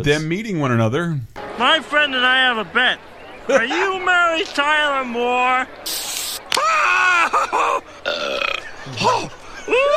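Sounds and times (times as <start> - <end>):
speech: 0.0 - 6.2, 7.3 - 8.3
laughter: 1.6 - 9.9
cartoon character burping: 8.0 - 8.7.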